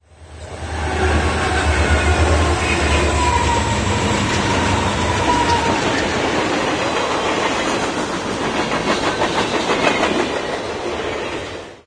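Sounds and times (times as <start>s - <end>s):
train passing: 0.0s - 11.8s
ambient machines: 0.1s - 7.2s.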